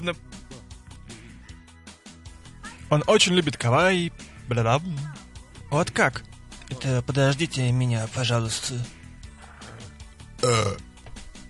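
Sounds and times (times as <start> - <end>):
speech: 0.0 - 0.6, 2.9 - 9.0, 10.4 - 10.9
burp: 9.4 - 10.9.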